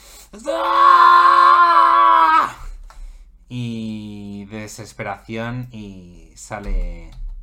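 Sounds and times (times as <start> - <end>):
speech: 0.3 - 0.8, 4.7 - 7.2
person screaming in frustration acting an enraged character: 0.4 - 2.7.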